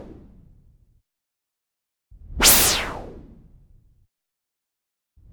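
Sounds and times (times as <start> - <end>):
short sharp whoosh noise filter sweep: 2.4 - 3.1.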